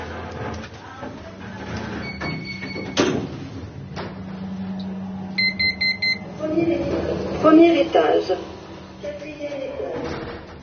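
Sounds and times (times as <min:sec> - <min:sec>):
elevator doors sliding shut with a muffled thud: 0:00.1 - 0:10.6
elevator beeps: 0:05.4 - 0:06.2
speech: 0:07.4 - 0:08.5.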